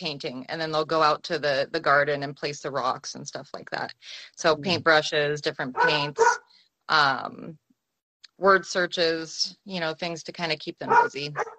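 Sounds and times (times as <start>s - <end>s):
speech: 0.0s - 7.6s, 8.4s - 11.5s
dog barking excitedly: 5.7s - 6.4s, 10.8s - 11.5s.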